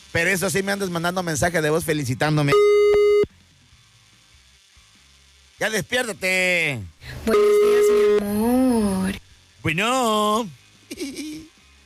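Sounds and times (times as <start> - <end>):
speech: 0.1 - 2.8, 5.6 - 11.5
phone busy signal: 2.5 - 3.3, 7.2 - 8.4.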